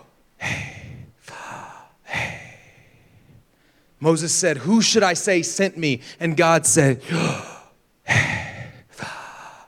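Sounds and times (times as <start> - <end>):
person breathing in and out as a demonstration: 0.4 - 4.0, 7.0 - 9.6
speech: 4.0 - 7.5.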